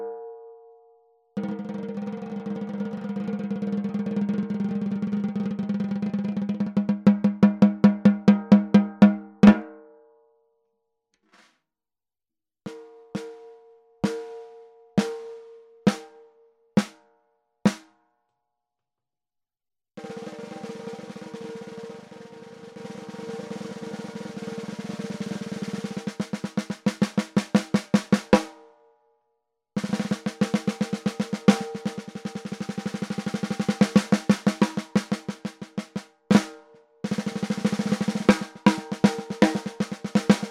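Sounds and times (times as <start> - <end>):
walnut 14X65 snare drums: 1.4 - 9.7, 11.3 - 11.6, 14.1 - 16.2, 16.8 - 17.0, 17.7 - 17.9, 20.0 - 28.6, 29.8 - 40.5.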